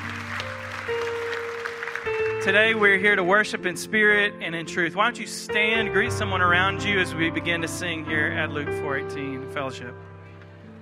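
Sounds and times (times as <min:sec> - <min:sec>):
congregation clapping: 0:00.0 - 0:03.3
speech: 0:02.4 - 0:10.1.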